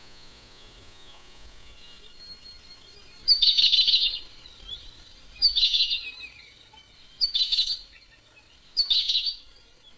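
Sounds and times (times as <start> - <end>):
bird making harsh raspy call bursts: 3.2 - 9.6.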